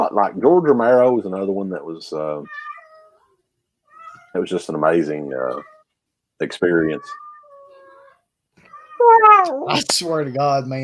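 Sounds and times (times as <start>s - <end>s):
speech: 0.1s - 2.7s, 4.4s - 5.7s, 6.4s - 7.2s, 9.0s - 10.8s
cat meowing: 2.4s - 3.3s, 3.9s - 4.5s, 5.3s - 5.8s, 6.7s - 9.8s.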